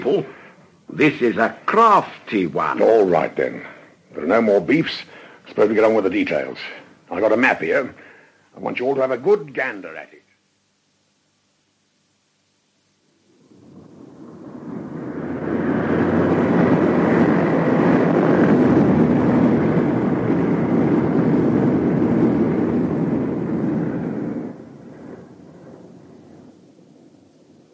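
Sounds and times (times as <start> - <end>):
speech: 0.0 - 10.2
large aircraft roaring as it lands: 13.6 - 26.5.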